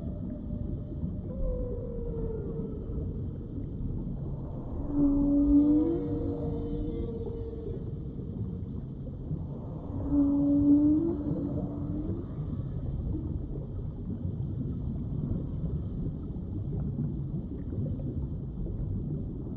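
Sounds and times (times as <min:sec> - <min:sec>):
whale calls deep underwater: 0:00.0 - 0:13.6
steady low rumble of the sea: 0:00.0 - 0:19.5.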